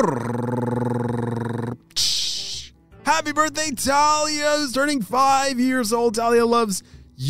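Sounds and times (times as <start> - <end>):
speech: 0.0 - 0.4, 3.1 - 7.2
voice imitating a drum roll with a rolled-tongue trill: 0.0 - 1.8.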